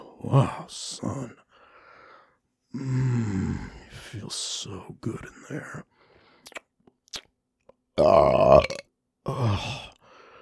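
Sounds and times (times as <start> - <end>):
speech: 0.2 - 1.4, 2.7 - 6.6, 8.0 - 9.8
faint mouth clicks and smacks: 6.4 - 7.8
loud burps: 8.0 - 8.9.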